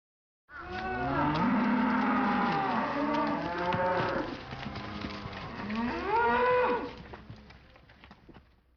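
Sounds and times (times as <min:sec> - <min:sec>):
cow mooing: 0:00.5 - 0:07.0.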